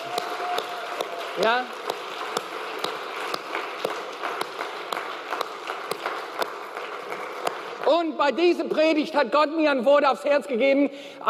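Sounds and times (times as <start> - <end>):
audience at a Sunday worship service applauding: 0.0 - 8.1
speech: 1.4 - 1.9, 7.9 - 11.2.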